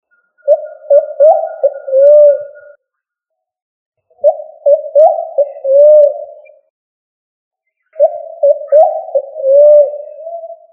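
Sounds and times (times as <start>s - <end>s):
pigeon cooing: 0.4s - 2.8s, 4.2s - 6.6s, 8.0s - 10.7s.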